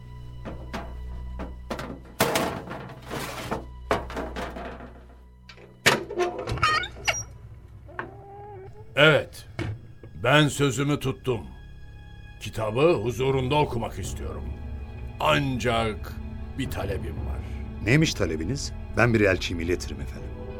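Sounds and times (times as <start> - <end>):
drawn-out creak of a heavy door swinging: 0.4 - 10.2
speech: 9.0 - 9.5, 10.2 - 11.6, 12.4 - 14.6, 15.2 - 20.4.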